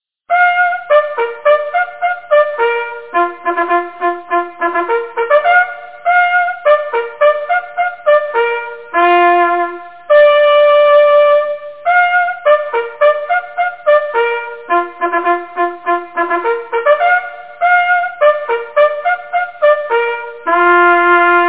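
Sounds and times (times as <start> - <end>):
hunting horn: 0.3 - 21.4.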